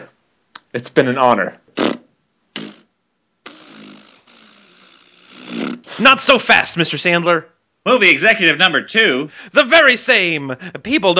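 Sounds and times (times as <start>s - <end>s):
speech: 0.7s - 1.6s, 6.0s - 11.1s
comic fart sound effect from a fart machine: 1.8s - 5.9s.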